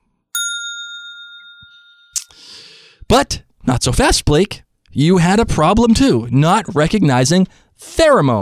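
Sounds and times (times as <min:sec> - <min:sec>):
single bright bell ding: 0:00.4 - 0:02.3
speech: 0:03.1 - 0:08.4.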